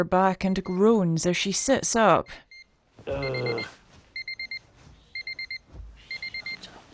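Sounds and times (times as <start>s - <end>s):
speech: 0.0s - 3.8s
electronic alarm clock beeping high-pitched tones: 2.2s - 6.6s.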